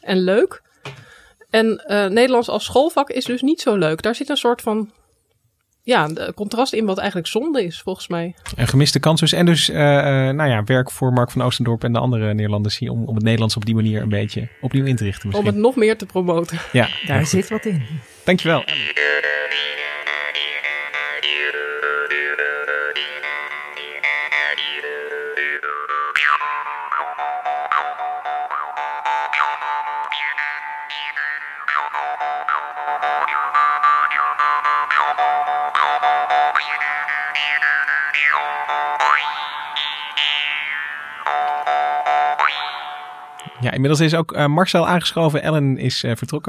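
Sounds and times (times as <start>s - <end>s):
speech: 0.0s - 0.6s, 1.5s - 5.0s, 5.8s - 19.8s, 43.6s - 46.4s
jaw harp twanging in a lively rhythmic pattern: 13.3s - 15.7s, 16.6s - 43.8s.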